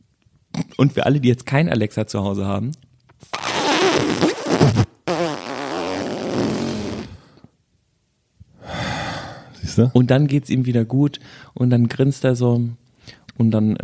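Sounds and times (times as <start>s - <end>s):
speech: 0.8s - 2.9s, 9.8s - 13.8s
fart noises from voice-assistant fart generator: 3.2s - 7.2s.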